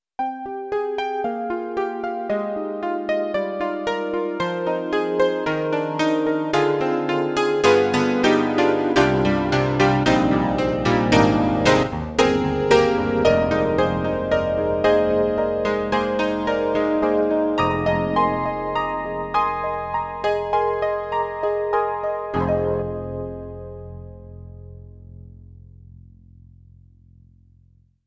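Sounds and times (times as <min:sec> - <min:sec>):
dance piano on a Roland SonicCell: 0:00.3 - 0:24.4.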